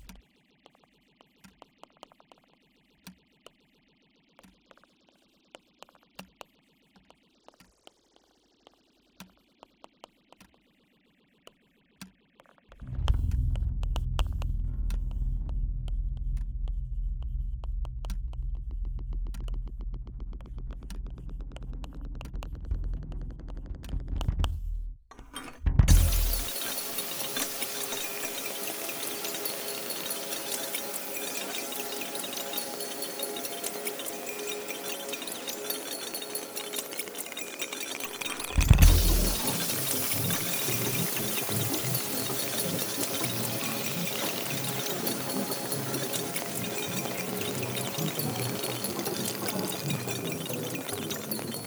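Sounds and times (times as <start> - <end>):
processed music stems: 12.7 - 51.6.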